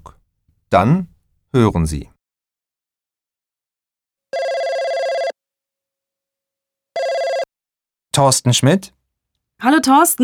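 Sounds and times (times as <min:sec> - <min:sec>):
speech: 0:00.7 - 0:02.1, 0:08.2 - 0:09.0, 0:09.6 - 0:10.2
electronic telephone ringing: 0:04.3 - 0:05.4, 0:07.0 - 0:07.5.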